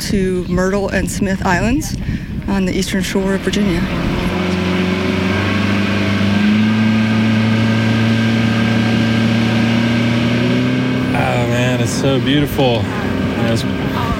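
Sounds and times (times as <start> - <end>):
motorboat engine droning off Virginia's Eastern Shore: 0.0 - 14.1
speech: 0.1 - 4.3, 12.0 - 14.1.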